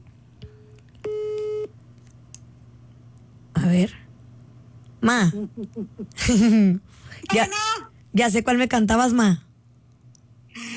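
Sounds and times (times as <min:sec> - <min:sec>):
low hum: 0:00.0 - 0:10.7
telephone tone while a call is being placed: 0:01.1 - 0:01.7
speech: 0:03.7 - 0:04.0, 0:05.0 - 0:09.4.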